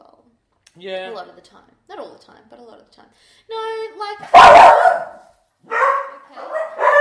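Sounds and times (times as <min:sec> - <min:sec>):
speech: 0:00.8 - 0:06.8
dogs barking: 0:04.2 - 0:06.9.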